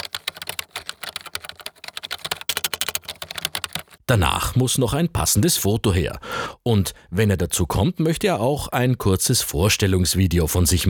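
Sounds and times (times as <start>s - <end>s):
rapid computer keyboard typing with plastic key clicks: 0.0s - 4.0s
speech: 4.1s - 10.8s.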